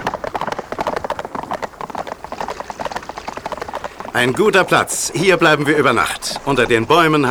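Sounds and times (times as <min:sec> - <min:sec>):
several horses galloping with hooves clip-clopping: 0:00.0 - 0:07.2
speech: 0:04.2 - 0:07.2.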